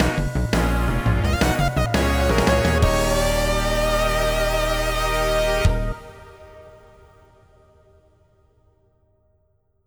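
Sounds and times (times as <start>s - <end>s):
fanfare: 0.0s - 6.9s.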